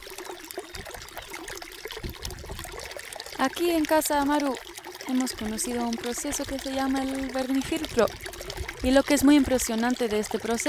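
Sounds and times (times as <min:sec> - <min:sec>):
dirty water poured out to be discarded: 0:00.0 - 0:10.6
speech: 0:03.4 - 0:10.6.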